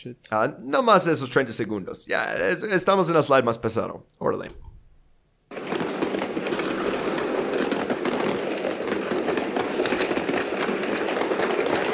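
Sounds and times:
speech: 0:00.0 - 0:04.7
rifle gunfire: 0:05.5 - 0:11.9.

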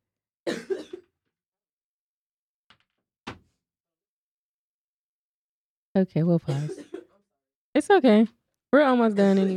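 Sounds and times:
harsh coughing: 0:00.5 - 0:01.1, 0:06.5 - 0:07.2
speech: 0:06.0 - 0:06.9, 0:07.8 - 0:09.5.

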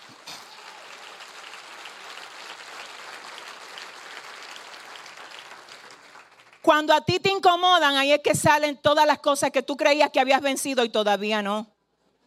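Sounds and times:
church audience applause: 0:00.0 - 0:06.6
speech: 0:06.7 - 0:11.7.

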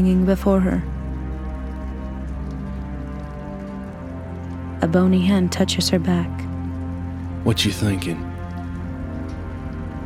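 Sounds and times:
speech: 0:00.0 - 0:00.9, 0:04.8 - 0:06.4, 0:07.4 - 0:08.3
rain falling: 0:00.0 - 0:10.0.

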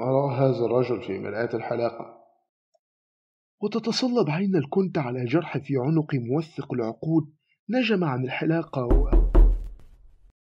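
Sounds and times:
speech: 0:00.0 - 0:02.2, 0:03.6 - 0:09.2
dull heavy knocking on a door: 0:08.8 - 0:09.9.

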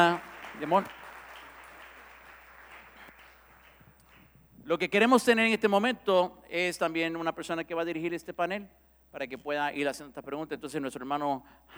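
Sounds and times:
speech: 0:00.0 - 0:01.0, 0:04.7 - 0:11.7
crowd applauding people going up onto a panel: 0:00.0 - 0:04.6.

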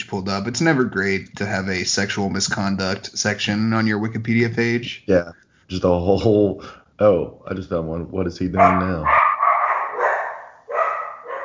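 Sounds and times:
speech: 0:00.1 - 0:09.2
dog barking agitatedly behind a closed office door: 0:08.6 - 0:11.4.

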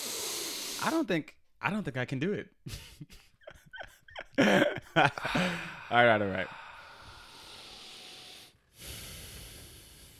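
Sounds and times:
deep breath taken to relax: 0:00.0 - 0:01.0, 0:05.2 - 0:10.1
speech: 0:00.8 - 0:03.2, 0:04.4 - 0:06.6
laughter: 0:02.7 - 0:06.5.

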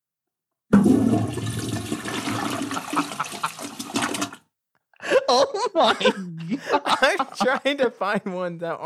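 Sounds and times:
toilet flushing: 0:00.7 - 0:04.4
laughter: 0:02.4 - 0:03.8, 0:05.0 - 0:08.3
speech: 0:05.3 - 0:08.8.

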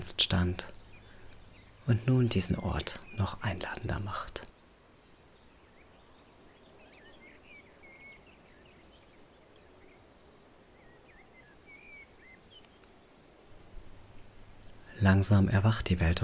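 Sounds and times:
speech: 0:00.0 - 0:00.8, 0:01.9 - 0:04.5, 0:15.0 - 0:16.2
birds singing and chirping at dawn: 0:00.0 - 0:04.5, 0:13.6 - 0:16.2
steady outdoor hiss: 0:00.0 - 0:04.5, 0:13.5 - 0:16.2.

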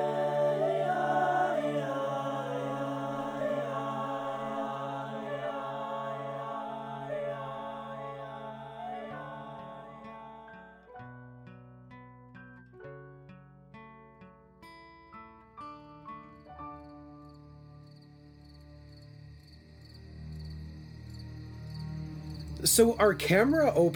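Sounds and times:
crickets chirping: 0:00.0 - 0:10.6, 0:16.7 - 0:23.9
speech: 0:22.6 - 0:23.9.

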